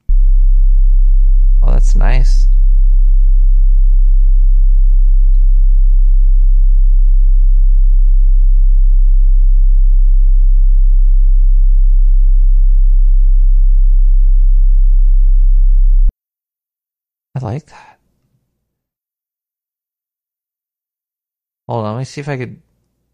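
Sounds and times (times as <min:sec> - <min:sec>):
33 hertz sine wave tone: 0:00.0 - 0:16.1
speech: 0:02.0 - 0:02.6, 0:17.4 - 0:17.9, 0:21.7 - 0:22.7.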